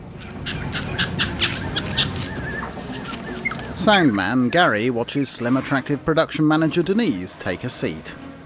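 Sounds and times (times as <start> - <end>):
steady rushing rainforest jungle noise: 0.0 - 8.4
startled grey monkey in a tree giving chattering calls: 0.4 - 4.6
speech: 3.8 - 8.3.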